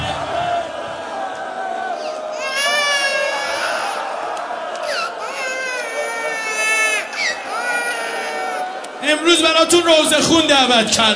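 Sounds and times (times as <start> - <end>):
crowd murmur in a large space: 0.0 - 9.2
child crying in long wavering wails: 2.0 - 4.2, 4.8 - 8.7
speech: 9.1 - 11.1.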